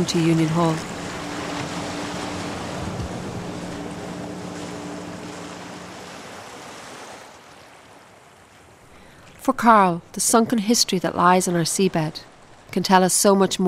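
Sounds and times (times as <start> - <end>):
speech: 0.0 - 0.9, 9.5 - 13.6
boat engine low hum: 0.0 - 7.6
strong waves sloshing and slapping against a boat hull in rough sea: 0.0 - 10.7.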